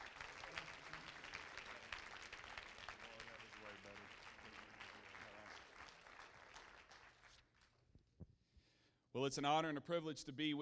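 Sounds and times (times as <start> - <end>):
audience clapping hands in welcome: 0.0 - 7.9
speech: 9.2 - 10.5.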